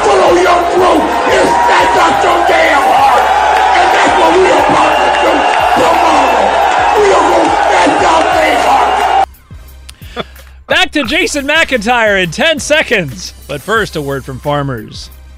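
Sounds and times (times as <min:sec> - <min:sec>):
packed crowd of fans cheering and yelling at a pep rally: 0:00.0 - 0:09.3
people shouting: 0:00.0 - 0:09.3
speech: 0:11.0 - 0:15.2.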